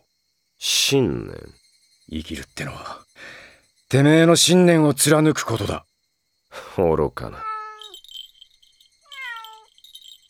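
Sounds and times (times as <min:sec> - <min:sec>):
steady hiss: 0:00.0 - 0:10.2
speech: 0:00.9 - 0:05.9, 0:06.5 - 0:07.5
cat meowing: 0:07.3 - 0:08.0, 0:09.1 - 0:09.7.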